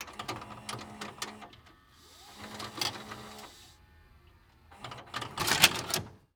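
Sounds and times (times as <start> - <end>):
electronic VCR ejecting tape: 0.0 - 6.2.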